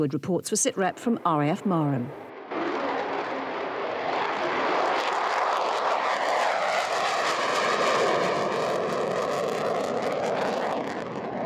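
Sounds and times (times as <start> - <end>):
speech: 0.0 - 2.3
F-35B Lightning fighter jet roaring while taking off: 2.2 - 11.4.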